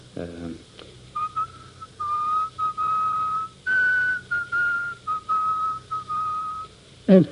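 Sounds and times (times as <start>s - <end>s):
man whistling a slow solemn funeral march: 1.2s - 6.8s.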